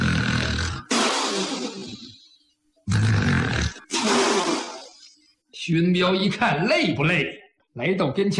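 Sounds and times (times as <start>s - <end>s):
voice imitating a drunk sleeping man's thunder-like snores: 0.0s - 2.2s, 2.9s - 5.2s
speech: 5.6s - 8.3s.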